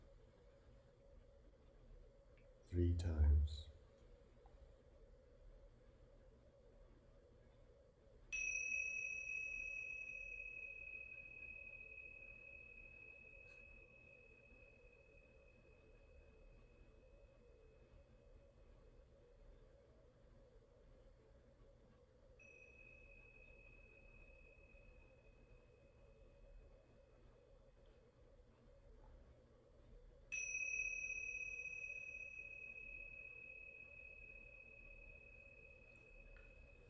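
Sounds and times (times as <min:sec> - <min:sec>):
faint low hum: 0:00.0 - 0:36.8
speech: 0:02.7 - 0:03.7
tingsha bells ringing during a guided meditation: 0:08.3 - 0:16.9, 0:22.4 - 0:26.4, 0:30.3 - 0:36.8.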